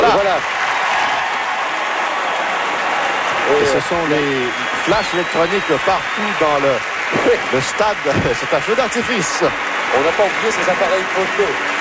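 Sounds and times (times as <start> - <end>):
stadium crowd cheering and applauding at an opening ceremony: 0.0 - 11.8
speech: 3.6 - 11.8.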